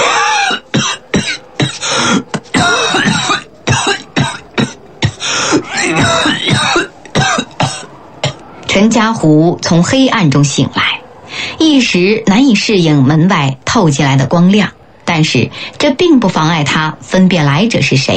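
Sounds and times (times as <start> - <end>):
gasping: 0.0 - 7.2
deep heavy coughing inside a room: 0.0 - 8.4
throat clearing: 0.0 - 8.4
speech: 9.0 - 11.0, 11.6 - 18.1.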